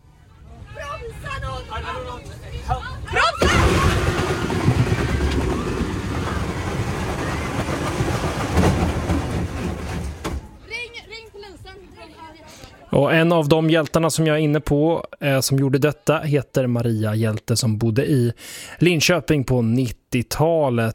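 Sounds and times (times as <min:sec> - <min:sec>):
bus grinding along a central crash barrier as it slowly stops: 0:03.4 - 0:10.6
speech: 0:13.2 - 0:20.9.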